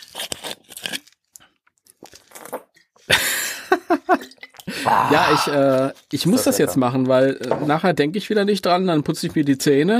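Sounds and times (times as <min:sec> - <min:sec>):
mandarin orange peel tearing: 0:00.0 - 0:02.6
speech: 0:04.8 - 0:09.9.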